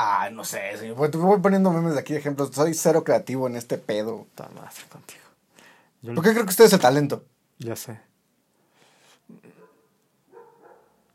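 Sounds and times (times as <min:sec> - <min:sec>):
speech: 0:00.0 - 0:05.3, 0:06.0 - 0:08.1
dog barking: 0:09.5 - 0:11.1.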